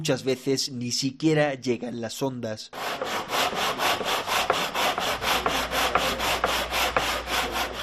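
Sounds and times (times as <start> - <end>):
speech: 0.0 - 4.2
hand sawing through wood in a radio-building workshop: 2.8 - 7.8.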